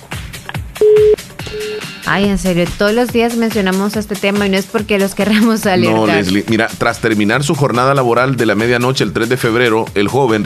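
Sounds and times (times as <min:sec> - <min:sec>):
thumping rhythmic music bed with deep pulsing beats: 0:00.0 - 0:10.4
telephone line tone beep: 0:00.8 - 0:01.9
speech: 0:01.5 - 0:10.4.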